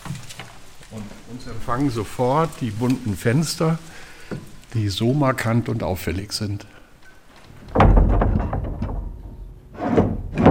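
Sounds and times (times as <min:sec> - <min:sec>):
speech: 0:00.9 - 0:06.8
heavy chapel door pushed open with a rumbling scrape: 0:07.8 - 0:10.4.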